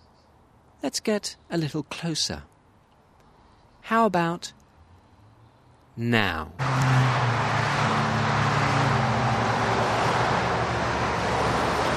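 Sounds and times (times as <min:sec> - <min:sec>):
motorway traffic roar through the Surrey countryside: 0:00.0 - 0:11.9
speech: 0:00.8 - 0:02.5, 0:03.8 - 0:04.6, 0:06.0 - 0:07.2.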